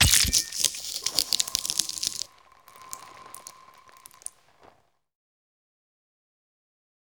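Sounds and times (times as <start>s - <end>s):
axe beheading: 0.1s - 4.7s.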